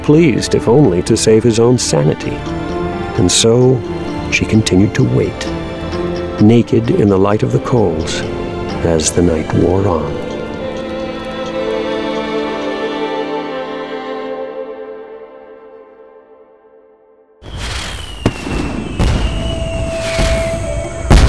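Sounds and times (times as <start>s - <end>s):
speech: 0.0s - 10.3s
long ringing tone: 2.0s - 12.9s
fireworks exploding with bangs, crackling and whistling: 17.5s - 21.2s.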